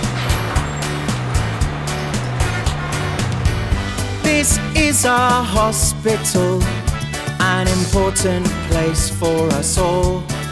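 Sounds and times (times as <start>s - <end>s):
bus engine drone with gear changes: 0.0s - 4.3s
bus road rumble and rushing noise: 0.0s - 5.6s
speech: 4.4s - 6.8s, 7.6s - 10.4s.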